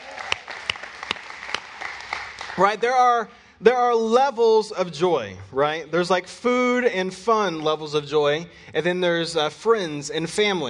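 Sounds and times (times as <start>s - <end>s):
audience applause: 0.0s - 2.8s
speech: 2.6s - 10.6s.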